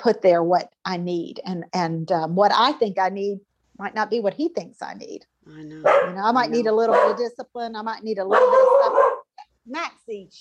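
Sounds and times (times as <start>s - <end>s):
speech: 0.0s - 10.3s
dog barking and yipping at a man: 5.8s - 7.3s, 8.3s - 9.3s.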